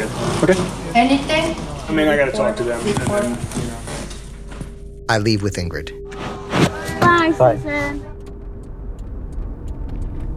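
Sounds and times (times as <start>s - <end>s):
speech: 0.5s - 3.6s, 5.1s - 6.0s, 7.2s - 8.1s
car driving on a highway: 8.2s - 10.3s
faint regular ticks: 8.2s - 10.3s.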